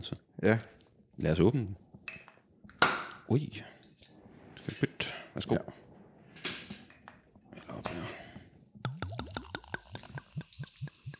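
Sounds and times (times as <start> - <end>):
speech: 0.0 - 1.8, 3.3 - 3.7, 4.7 - 5.8
ginger beer poured into a glass fizzing in Odense Denmark: 8.9 - 11.1.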